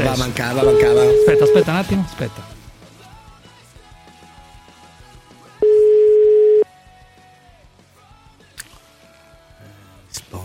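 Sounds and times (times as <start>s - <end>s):
speech: 0.1s - 2.5s
quiet phone line hiss: 0.6s - 1.8s, 5.6s - 6.6s
telephone ringing tone on an outgoing call: 0.6s - 1.8s, 5.6s - 6.6s.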